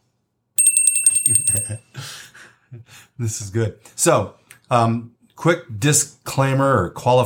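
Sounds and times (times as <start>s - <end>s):
small hand bell ringing: 0.6s - 1.8s
speech: 1.3s - 7.2s.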